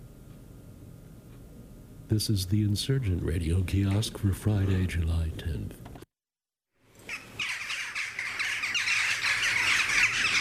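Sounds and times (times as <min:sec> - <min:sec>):
speech: 0:02.1 - 0:05.8
jackdaws calling in a backyard in Wales: 0:07.0 - 0:10.3.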